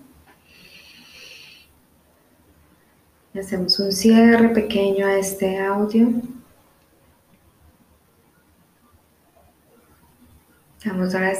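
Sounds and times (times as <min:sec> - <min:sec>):
slow deep breath: 0:00.3 - 0:01.8
speech: 0:03.4 - 0:06.4, 0:11.0 - 0:11.3.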